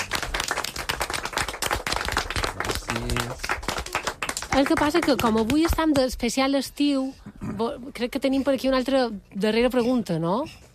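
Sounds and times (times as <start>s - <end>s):
small group of people applauding in a studio: 0.0s - 6.2s
speech: 4.6s - 10.6s.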